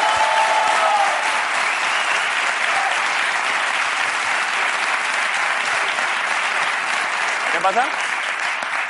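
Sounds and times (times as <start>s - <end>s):
faint whistle or cheer: 0.0s - 2.8s
audience applause: 0.0s - 8.8s.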